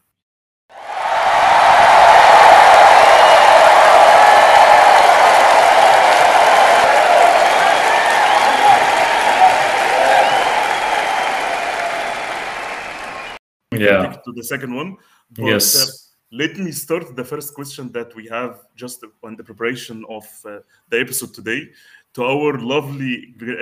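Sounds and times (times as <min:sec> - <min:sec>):
large audience applause: 0:00.7 - 0:13.4
speech: 0:13.9 - 0:23.5.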